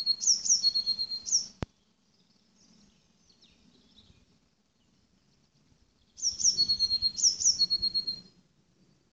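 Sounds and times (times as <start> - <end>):
Eurasian blue tit Cyanistes caeruleus calling with high notes and buzzy trill: 0.0 - 1.6, 6.2 - 8.2.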